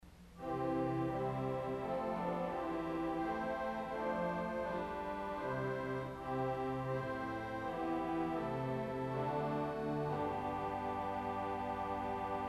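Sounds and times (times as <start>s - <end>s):
pipe organ voix celeste stop: 0.4s - 12.4s.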